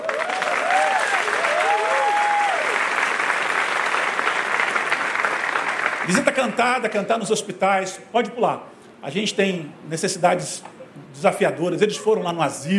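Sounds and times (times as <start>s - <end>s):
audience applauding: 0.0s - 6.6s
speech: 6.1s - 12.7s.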